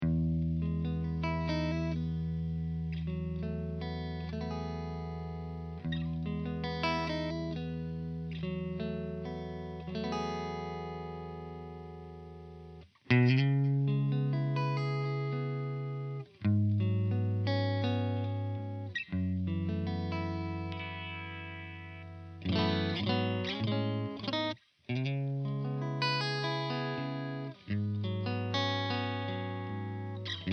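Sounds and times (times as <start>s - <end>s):
clean electric guitar riff through Eminence speaker: 0.0s - 30.5s.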